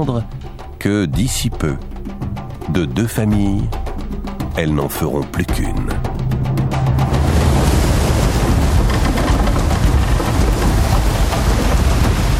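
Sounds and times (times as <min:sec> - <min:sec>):
speech: 0:00.0 - 0:01.9, 0:02.7 - 0:03.8, 0:04.6 - 0:06.0
stormy sea waves crashing at night on the African coast: 0:06.3 - 0:12.3
windy rain-like hiss: 0:07.0 - 0:12.3.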